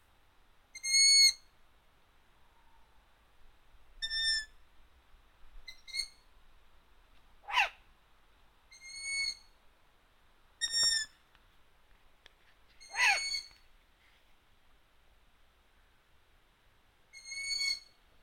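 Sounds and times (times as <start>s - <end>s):
long-eared owl giving thin squeaky tonal calls and a rasping squeal: 0.8s - 1.4s, 4.0s - 4.5s, 5.7s - 6.2s, 7.5s - 7.8s, 8.7s - 9.5s, 10.6s - 11.1s, 12.8s - 13.6s, 17.1s - 17.9s.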